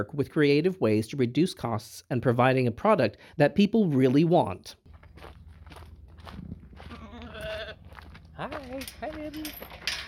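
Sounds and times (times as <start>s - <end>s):
speech: 0.0s - 5.4s, 8.4s - 9.9s
lambs rustling and shuffling: 4.9s - 10.0s
market lambs bleating on a hobby farm: 6.9s - 7.8s.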